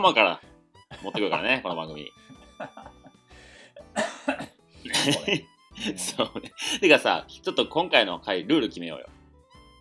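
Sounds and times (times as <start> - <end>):
speech: 0.0 - 3.0, 4.9 - 9.2
laughter: 0.9 - 3.1, 4.9 - 6.9
person clearing throat: 3.8 - 5.3
person coughing: 3.8 - 5.4.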